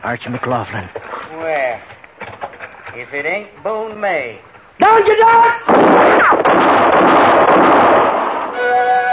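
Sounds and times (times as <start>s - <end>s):
speech: 0.0s - 2.0s, 3.0s - 9.0s
dense burst of gunfire in an exchange: 5.7s - 8.6s.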